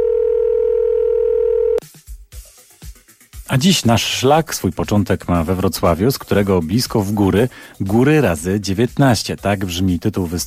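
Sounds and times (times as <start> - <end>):
telephone dial tone: 0.0 - 1.8
speech: 3.5 - 10.4.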